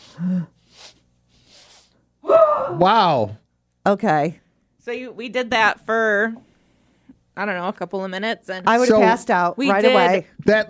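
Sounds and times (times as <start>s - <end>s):
quick forceful breaths from a standing yoga breathing exercise: 0.0s - 2.0s
speech: 2.8s - 6.5s, 7.4s - 10.6s.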